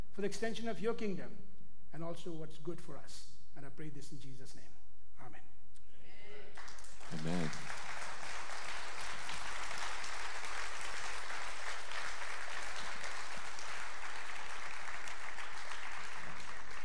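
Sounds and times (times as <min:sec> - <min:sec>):
speech: 0:00.2 - 0:05.5, 0:06.6 - 0:07.8
large crowd applauding: 0:06.6 - 0:16.8.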